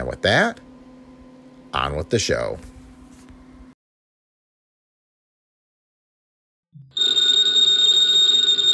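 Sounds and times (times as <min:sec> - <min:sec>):
speech: 0:00.1 - 0:00.6, 0:01.7 - 0:02.7
old-fashioned telephone bell ringing: 0:06.9 - 0:08.7.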